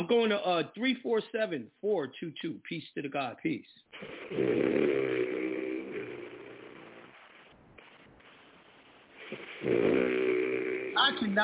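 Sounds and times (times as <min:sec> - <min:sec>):
speech: 0:00.0 - 0:05.4, 0:09.7 - 0:10.2
faint breathing: 0:03.9 - 0:11.0
sleeping man snoring through a phone-quality line: 0:04.0 - 0:07.3, 0:09.3 - 0:11.2.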